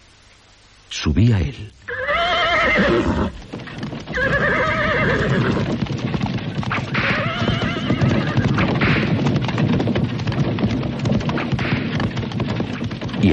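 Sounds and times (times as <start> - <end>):
speech: 1.0 - 1.8, 2.6 - 3.5
carriage horse neighing: 1.9 - 5.8, 6.6 - 9.1
clip-clop of hooves of a trotting carriage horse: 2.7 - 13.3.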